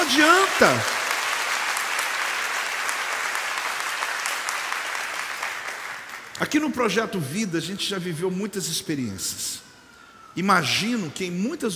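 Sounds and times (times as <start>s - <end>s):
sustained applause from a large group: 0.0s - 6.4s
speech: 0.1s - 1.0s, 6.4s - 9.7s, 10.4s - 11.7s.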